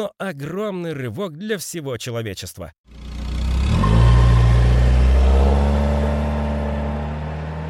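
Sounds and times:
speech: 0.0 - 3.0
old three-wheeled car engine revving: 2.9 - 7.6.

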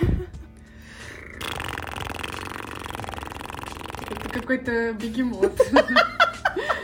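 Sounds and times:
person imitating a cat purring: 0.9 - 4.6
speech: 4.4 - 6.8
laughter: 5.5 - 6.8.

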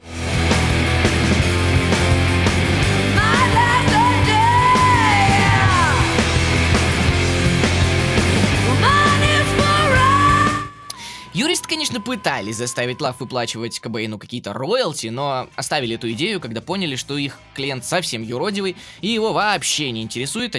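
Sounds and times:
loud dense rock song with raw yelled vocals, distorted guitars and pounding drums: 0.1 - 13.3
speech: 11.7 - 20.5.

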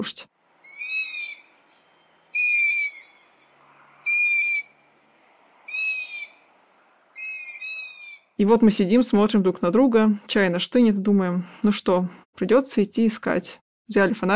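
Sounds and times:
speech: 0.0 - 0.3, 8.4 - 14.3
long-eared owl chicks squeaking heard in the evening through a window: 0.6 - 3.4, 4.0 - 4.8, 5.7 - 6.5, 7.2 - 8.4.

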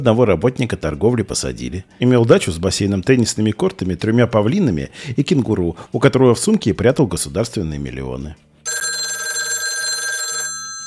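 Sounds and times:
speech: 0.0 - 8.8
telephone ringing with an electronic trill: 8.6 - 10.8.

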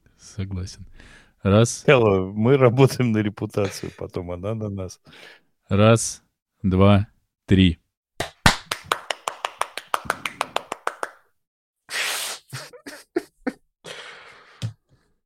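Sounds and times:
speech: 0.4 - 7.8
hand claps: 8.2 - 11.3.

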